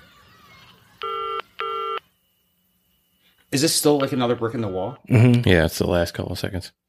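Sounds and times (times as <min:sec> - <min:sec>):
faint low hum: 0:00.0 - 0:06.8
electronic telephone dialing tones: 0:00.7 - 0:02.1
speech: 0:03.5 - 0:06.8.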